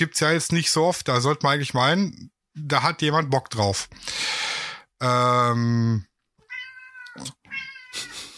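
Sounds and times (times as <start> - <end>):
speech: 0.0 - 6.1, 7.2 - 8.1
cat meowing: 6.4 - 8.3.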